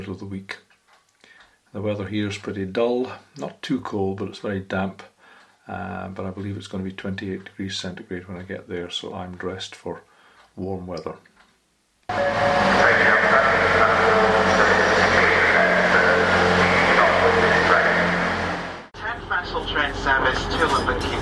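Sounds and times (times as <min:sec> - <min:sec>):
speech: 0:00.0 - 0:00.7, 0:01.7 - 0:05.1, 0:05.7 - 0:11.3, 0:12.1 - 0:16.6
constant low drone: 0:12.1 - 0:18.9
onboard announcement: 0:12.1 - 0:21.1
train interior rumbling on rails: 0:12.1 - 0:21.1.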